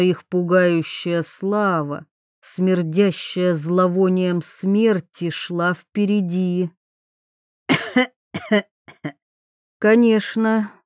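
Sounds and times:
speech: 0:00.0 - 0:06.8, 0:08.0 - 0:09.2, 0:09.8 - 0:10.8
old man coughing and clearing his throat: 0:07.7 - 0:09.2.

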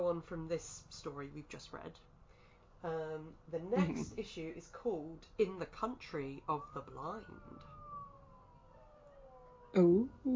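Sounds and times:
speech: 0:00.0 - 0:02.2, 0:02.8 - 0:07.8, 0:09.7 - 0:10.3
laughter: 0:03.8 - 0:04.2
siren wailing: 0:06.2 - 0:10.3.

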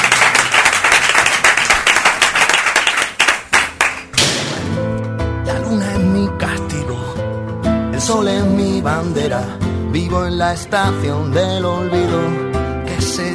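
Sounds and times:
group applause as someone is sent off through a door: 0:00.0 - 0:04.2
music: 0:03.2 - 0:13.3
speech: 0:08.1 - 0:12.4.

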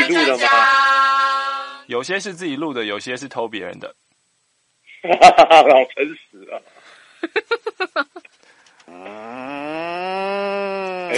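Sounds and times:
speech: 0:00.1 - 0:00.8, 0:01.9 - 0:04.0, 0:05.0 - 0:08.3, 0:08.9 - 0:11.1
man imitating a cow mooing: 0:08.9 - 0:11.1.

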